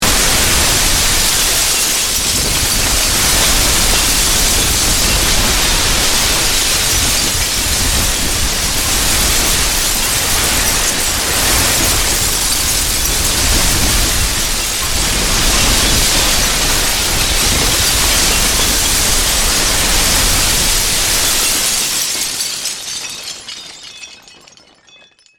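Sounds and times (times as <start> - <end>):
long rock crash mix of glass and wood: 0.0 - 25.3.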